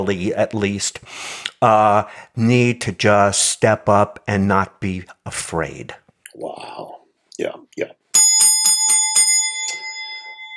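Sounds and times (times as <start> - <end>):
speech: 0.0 - 8.0
old school bell ringing with clapper hammering: 8.2 - 10.5.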